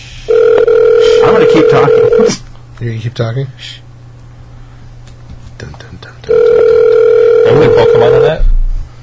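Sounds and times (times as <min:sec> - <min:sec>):
phone call ringing tone: 0:00.3 - 0:02.3, 0:06.3 - 0:08.4
speech: 0:01.4 - 0:03.9, 0:05.6 - 0:06.6, 0:07.4 - 0:08.6.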